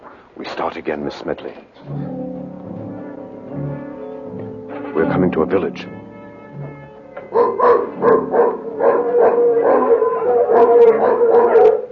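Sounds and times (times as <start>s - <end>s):
speech: 0.6s - 2.1s, 5.0s - 6.0s
mongrel dogs barking and howling: 7.2s - 11.9s.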